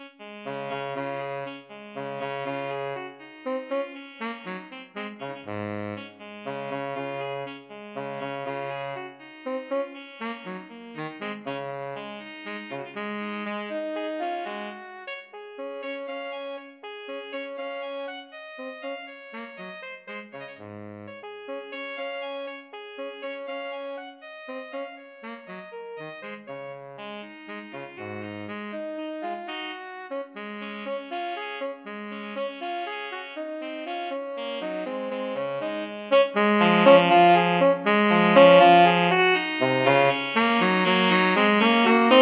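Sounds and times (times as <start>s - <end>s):
alto and tenor saxophone duet: 0.0s - 42.1s.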